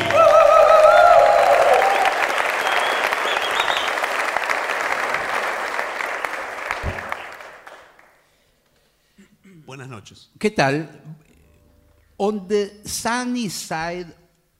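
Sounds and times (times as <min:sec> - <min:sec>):
audience cheers: 0:00.0 - 0:05.3
applause from a large audience: 0:00.0 - 0:08.2
speech: 0:10.4 - 0:11.0, 0:12.2 - 0:14.2.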